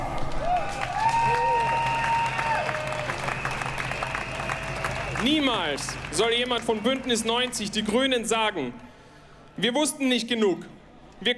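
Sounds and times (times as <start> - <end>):
people cheering: 0.0 - 8.6
large crowd applauding a speaker: 0.0 - 9.0
high tonal whistles from a crowd: 1.1 - 5.6
speech: 5.2 - 8.9, 9.6 - 11.3.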